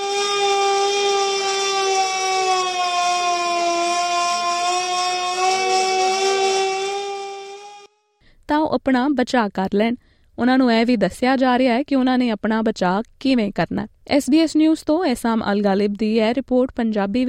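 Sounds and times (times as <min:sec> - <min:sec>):
air raid siren sounded in civil defence drills: 0:00.0 - 0:08.0
speech: 0:08.8 - 0:17.2.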